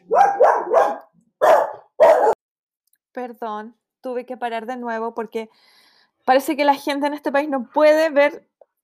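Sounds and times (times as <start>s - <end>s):
dogs barking excitedly: 0.0s - 2.4s
speech: 3.2s - 8.5s.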